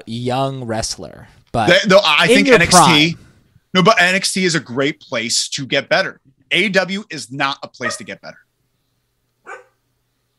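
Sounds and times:
speech: 0.1 - 8.4
single sharp dog bark: 7.8 - 8.1, 9.4 - 9.8.

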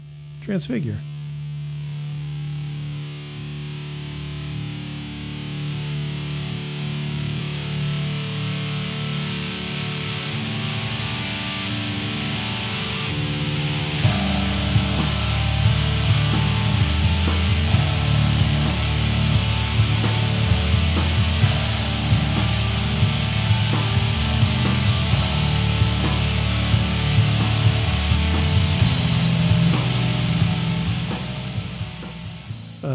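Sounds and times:
thick distorted guitar drone in a heavy rock song: 0.0 - 32.9
speech: 0.4 - 1.1
rock drums with a regular cymbal beat: 14.0 - 32.9.

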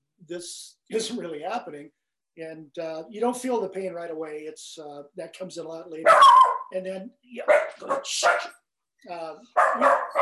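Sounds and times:
speech: 0.3 - 10.2
puppy barking: 6.1 - 6.7, 7.5 - 8.5, 9.5 - 10.2.

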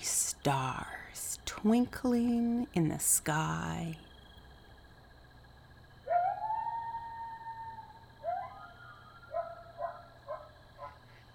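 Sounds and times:
low hiss: 0.0 - 11.3
speech: 0.4 - 1.0, 1.6 - 4.1
coyote howling and yipping: 6.0 - 11.0.

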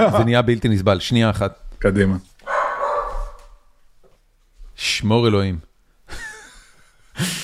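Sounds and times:
dog barking: 0.0 - 0.4, 2.4 - 3.7
speech: 0.0 - 2.3, 4.8 - 6.3
laughter: 6.1 - 7.4.

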